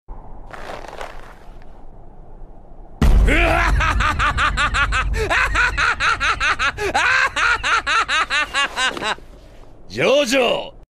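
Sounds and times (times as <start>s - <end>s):
crazy laughter: 3.3s - 9.2s.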